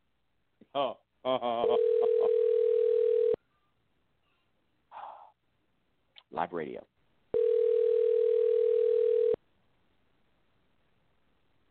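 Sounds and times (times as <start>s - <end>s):
speech: 0.6s - 2.5s, 6.3s - 6.9s
steady mid-pitched telephone dial tone while dialing a number: 1.8s - 3.4s, 7.4s - 9.4s.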